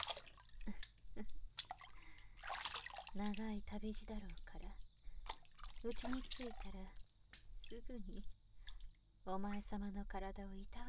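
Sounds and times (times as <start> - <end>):
bath water sloshing: 0.0 - 7.8
hot bath water dripping: 0.0 - 9.0
speech: 3.1 - 4.9, 5.8 - 7.0, 7.7 - 8.4, 9.2 - 10.8.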